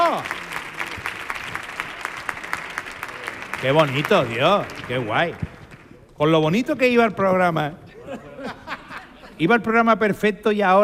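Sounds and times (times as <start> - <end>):
audience applauding in dense rhythmic clapping: 0.0 - 6.2
speech: 3.6 - 5.5, 6.2 - 8.3, 9.4 - 10.8
laughter: 7.8 - 9.7.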